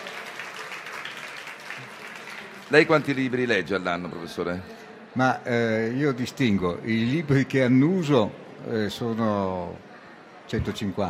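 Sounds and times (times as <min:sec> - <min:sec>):
audience applause greeting a guest economist at an economics talk: 0:00.0 - 0:03.8
speech: 0:02.7 - 0:09.9, 0:10.5 - 0:11.0.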